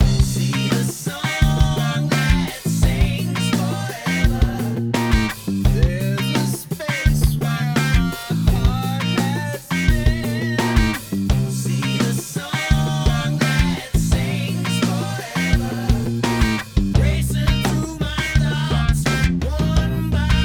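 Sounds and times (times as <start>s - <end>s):
guitar through channel strip: 0.0s - 20.4s
person singing into microphone: 0.5s - 11.0s, 11.8s - 20.4s.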